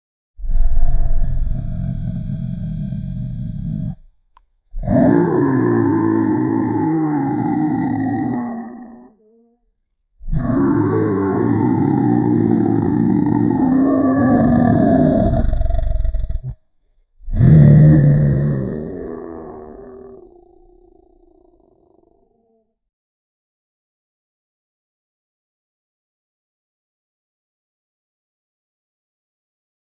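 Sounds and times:
big beastly creature roaring furiously: 0:00.4 - 0:04.1, 0:04.8 - 0:09.6, 0:10.2 - 0:16.6, 0:17.2 - 0:22.8.

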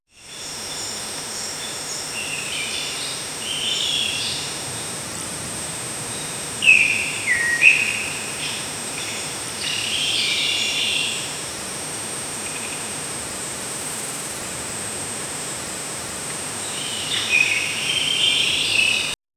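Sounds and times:
peaceful jungle forest ambience: 0:00.2 - 0:19.2.

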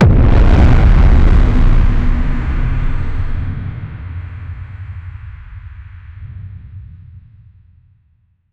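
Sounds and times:
trailer impacts: 0:00.0 - 0:06.0.

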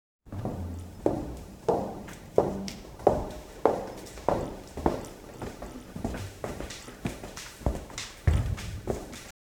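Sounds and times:
footsteps walking in boots: 0:00.3 - 0:09.3.

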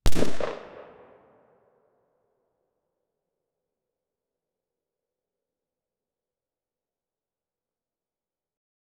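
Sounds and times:
single gunshot echoing in a quiet room: 0:00.1 - 0:01.2.

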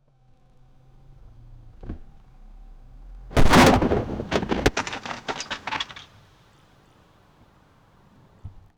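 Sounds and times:
car exploding in an accident: 0:03.3 - 0:06.2.

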